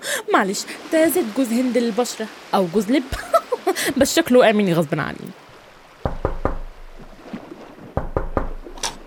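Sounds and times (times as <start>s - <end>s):
speech: 0.3s - 5.4s
sharp loud knocks on a locked door: 6.0s - 6.7s, 8.0s - 8.6s.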